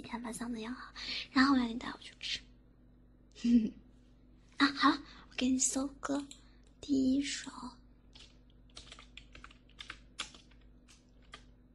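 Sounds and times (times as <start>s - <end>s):
speech: 0.0s - 2.5s, 3.4s - 3.8s, 4.6s - 7.8s
soft typing on a newly replaced computer keyboard: 8.1s - 11.5s.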